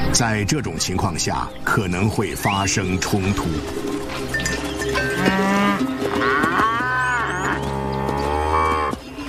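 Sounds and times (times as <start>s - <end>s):
speech: 0.1s - 4.4s
cattle herd mooing in a reserve crowded with livestock: 4.9s - 9.0s.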